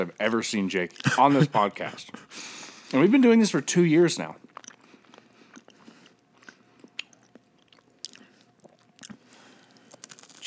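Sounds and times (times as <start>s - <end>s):
speech: 0.0s - 4.4s
crunchy chewing of a cracker: 4.4s - 10.4s.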